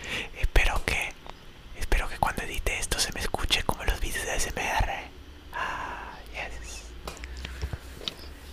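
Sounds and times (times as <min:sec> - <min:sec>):
soft breathy hisses: 0:00.0 - 0:00.4, 0:05.5 - 0:06.9
ASMR-style whispering into a new microphone: 0:00.3 - 0:01.2, 0:01.8 - 0:07.0.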